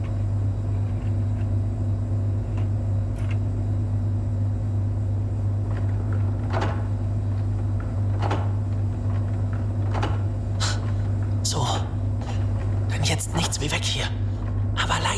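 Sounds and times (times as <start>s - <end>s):
printing press humming: 0.0s - 15.1s
printing press mechanical clunks and clacks: 7.8s - 10.3s.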